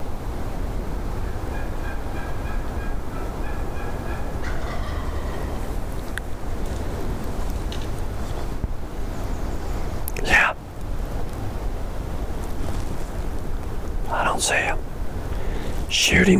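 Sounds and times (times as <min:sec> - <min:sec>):
rushing noise: 0:00.0 - 0:16.3
wild turkey gobbling: 0:01.2 - 0:06.1
speech: 0:14.4 - 0:14.8, 0:16.1 - 0:16.3.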